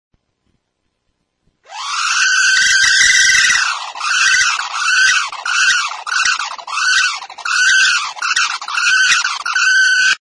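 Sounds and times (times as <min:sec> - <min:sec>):
60GB hard disk with degraded motor bearings loud drilling noise: 0:01.7 - 0:10.2.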